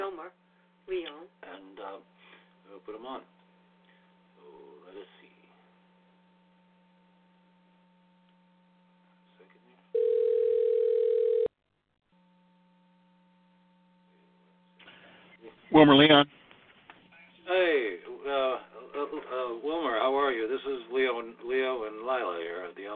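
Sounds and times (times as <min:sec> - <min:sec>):
constant low mains hum: 0:00.0 - 0:22.9
speech: 0:00.2 - 0:03.4, 0:15.7 - 0:16.4, 0:17.5 - 0:22.9
telephone dial tone as a call is placed: 0:10.0 - 0:11.5.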